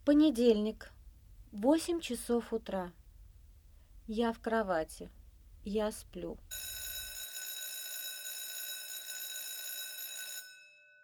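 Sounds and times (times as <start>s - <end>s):
speech: 0.0s - 3.0s, 4.1s - 6.8s
alarm clock ringing with a shrill electronic tone: 6.5s - 11.0s.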